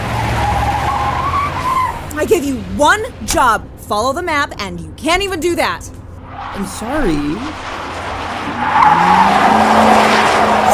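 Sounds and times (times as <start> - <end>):
speeding ice cream truck tires squealing: 0.0 - 2.5, 6.2 - 10.7
speeding ice cream truck roaring engine: 0.0 - 5.2, 5.9 - 10.7
speech: 2.2 - 7.7, 8.6 - 10.0.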